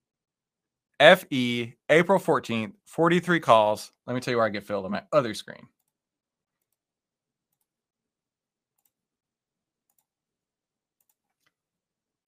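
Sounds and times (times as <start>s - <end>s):
speech: 1.0s - 5.8s
sharp computer mouse clicks: 8.8s - 9.0s, 9.9s - 10.1s, 11.0s - 11.6s.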